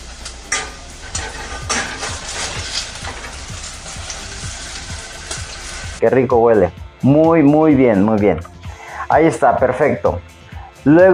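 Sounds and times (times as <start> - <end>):
sofrito with tomato sizzling in a pan: 0.0 - 6.0
stirring sounds in a pan: 0.0 - 6.0
speech: 6.0 - 8.5, 9.1 - 11.1.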